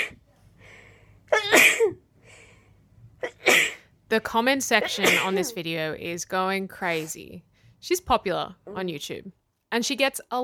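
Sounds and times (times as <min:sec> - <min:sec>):
woman sneezing: 0:01.3 - 0:02.0, 0:04.8 - 0:05.6
speech: 0:04.2 - 0:10.4.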